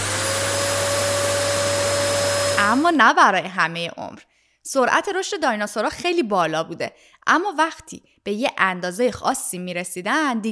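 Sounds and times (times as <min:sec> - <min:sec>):
vacuum cleaner running: 0:00.0 - 0:03.0
speech: 0:02.7 - 0:10.4.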